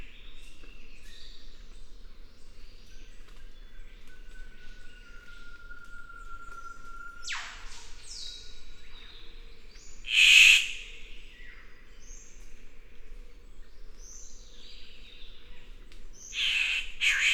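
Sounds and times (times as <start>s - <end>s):
Victoria's riflebird rasping calls: 10.1s - 10.8s, 16.4s - 17.3s.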